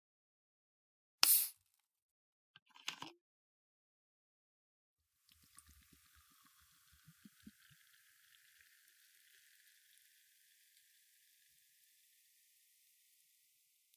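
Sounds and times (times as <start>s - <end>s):
bottle of orange soda opening with a sharp hiss: 1.2s - 1.5s
fizzy orange soda poured into a wine glass: 5.3s - 13.9s.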